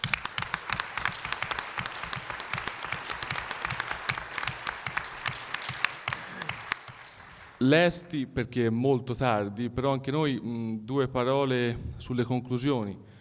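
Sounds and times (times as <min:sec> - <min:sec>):
audience applause: 0:00.0 - 0:07.7
speech: 0:07.6 - 0:13.1.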